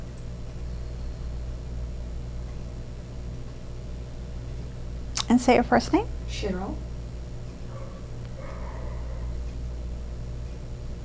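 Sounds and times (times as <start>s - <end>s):
steady low droning hum: 0.0s - 11.0s
speech: 5.3s - 6.9s
dog barking: 7.7s - 9.4s.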